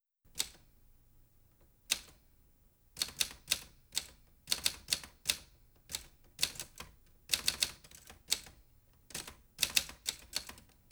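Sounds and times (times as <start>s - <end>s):
typewriter typing: 3.0s - 10.7s.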